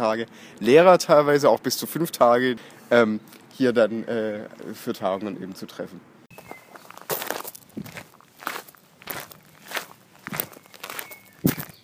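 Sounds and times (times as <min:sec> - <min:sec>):
speech: 0:00.0 - 0:06.1
footsteps walking down a staircase from the roof of a large auditorium: 0:06.9 - 0:11.8.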